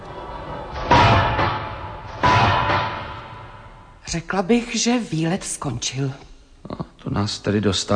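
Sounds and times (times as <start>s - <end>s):
heavy door slamming: 0.4s - 4.0s
speech: 4.1s - 7.9s.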